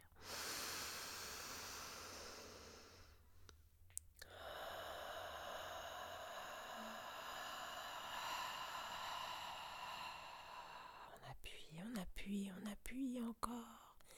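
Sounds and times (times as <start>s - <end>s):
deep breathing in during a breathing exercise: 0.0s - 3.4s, 4.2s - 11.2s
speech: 12.2s - 13.9s.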